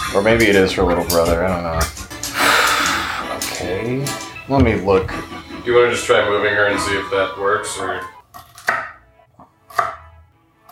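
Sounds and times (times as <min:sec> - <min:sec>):
speech: 0:00.1 - 0:02.0, 0:03.6 - 0:08.1
sharp chopping strikes: 0:08.3 - 0:09.0, 0:09.7 - 0:10.1.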